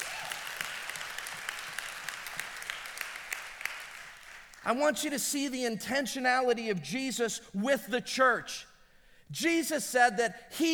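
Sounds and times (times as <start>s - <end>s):
crowd clapping: 0.0s - 4.7s
speech: 4.6s - 8.7s, 9.3s - 10.7s.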